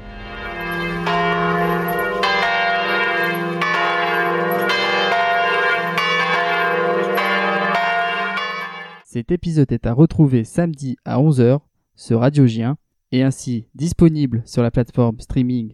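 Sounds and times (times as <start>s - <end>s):
great bourdon church bell ringing at the top of a bell tower: 0.0s - 9.1s
speech: 9.2s - 15.7s.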